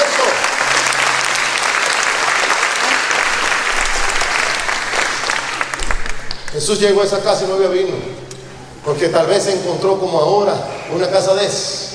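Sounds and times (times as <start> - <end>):
crowd applauding: 0.0 - 7.6
speech: 6.6 - 8.2, 8.8 - 11.8.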